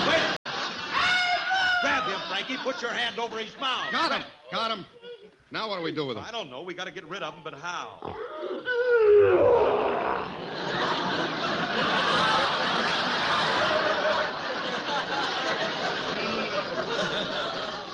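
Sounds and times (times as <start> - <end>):
laughter: 0.0 - 4.2, 9.8 - 17.9
speech: 2.3 - 12.5
lion growling in a rough rumbling snarl: 8.0 - 10.6.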